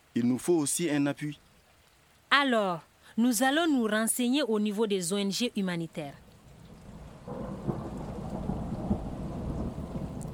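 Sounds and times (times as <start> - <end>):
steady rain hissing: 0.0 - 10.3
speech: 0.2 - 1.5, 2.4 - 6.2
deep rolling thunder rumble: 6.3 - 10.3.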